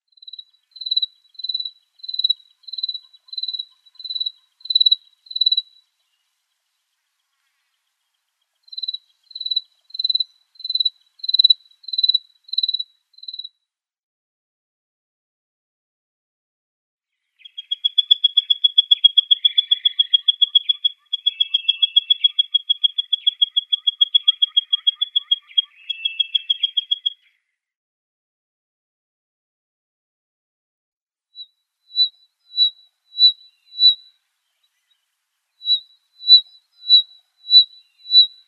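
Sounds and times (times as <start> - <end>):
longtail cricket song: 0.1 - 6.3, 8.6 - 13.6, 17.5 - 27.2, 31.9 - 34.9, 35.6 - 38.4.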